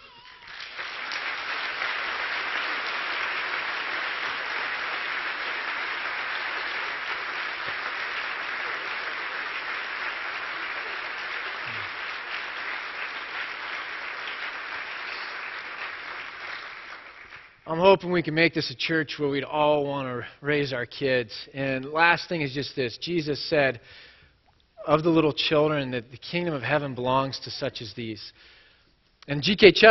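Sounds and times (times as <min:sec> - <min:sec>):
church congregation applauding: 0:00.0 - 0:17.6
speech: 0:17.7 - 0:24.1, 0:24.8 - 0:28.6, 0:29.3 - 0:29.8.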